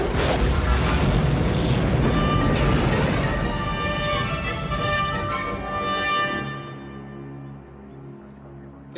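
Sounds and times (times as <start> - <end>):
explosion with deep rumbling roar: 0.0 - 5.2
crackling debris: 0.0 - 6.5.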